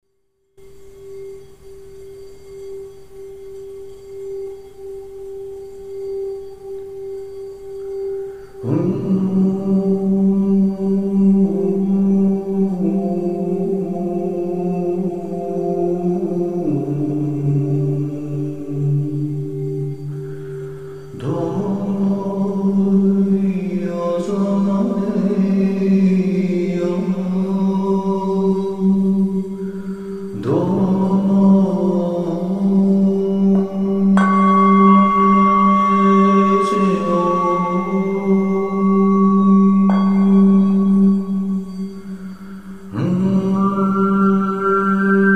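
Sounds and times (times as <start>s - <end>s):
singing bowls: 0.6s - 45.3s.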